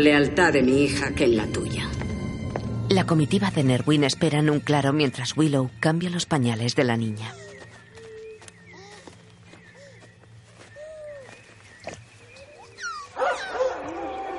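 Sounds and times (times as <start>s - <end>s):
speech: 0.0s - 1.9s, 2.9s - 7.4s
dogs barking and yelping as riders chase through a forest: 10.8s - 14.0s.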